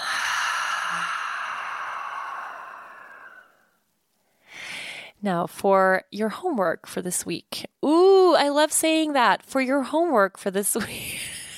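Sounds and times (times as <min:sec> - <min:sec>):
person letting out a deep breath slowly through the mouth: 0:00.0 - 0:03.8
speech: 0:05.2 - 0:11.2.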